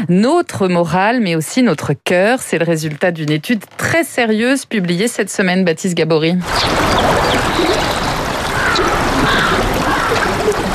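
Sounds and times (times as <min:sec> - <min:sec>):
speech: 0:00.0 - 0:08.1
river water rushing: 0:06.4 - 0:10.7.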